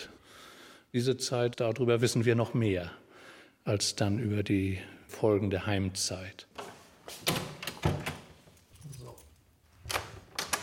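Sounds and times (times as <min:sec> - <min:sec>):
speech: 0:00.9 - 0:03.0, 0:03.6 - 0:06.5
door in a historic building being shut and locked: 0:07.3 - 0:08.4.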